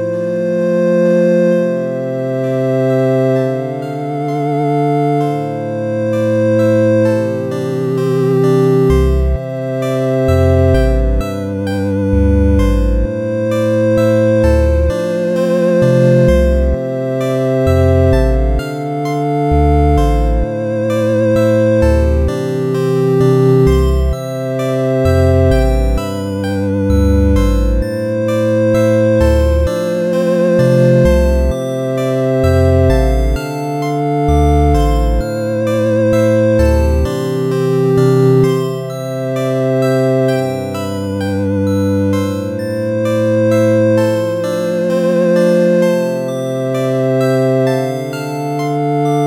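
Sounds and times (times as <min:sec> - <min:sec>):
chiptune alarm clock: 0:00.1 - 0:49.2.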